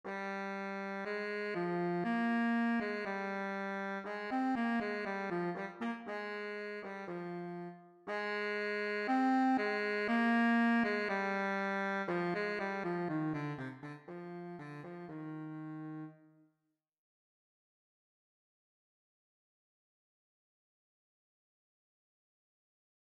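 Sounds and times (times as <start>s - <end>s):
baritone saxophone etude: 0.1s - 16.2s.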